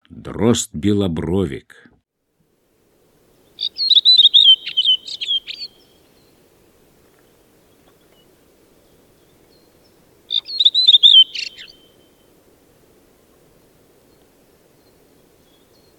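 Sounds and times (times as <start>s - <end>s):
redwing uttering a brief warbling twitter: 3.4s - 6.1s, 10.3s - 12.1s.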